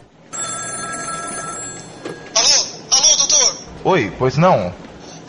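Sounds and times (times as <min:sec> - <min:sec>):
telephone ringing with electronic bell tone: 0:00.3 - 0:03.6
speech: 0:03.8 - 0:04.8.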